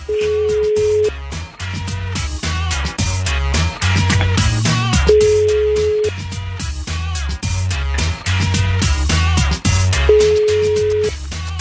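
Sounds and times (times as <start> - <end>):
loud busy music bed with heavy bass: 0.0 - 11.5
phone line ringing tone: 0.1 - 1.1, 5.1 - 6.2, 10.1 - 11.2.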